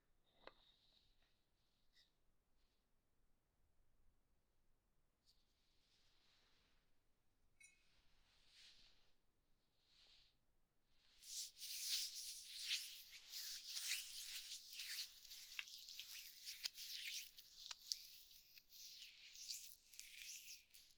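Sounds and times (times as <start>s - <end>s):
massage with horse oil: 11.0s - 20.9s.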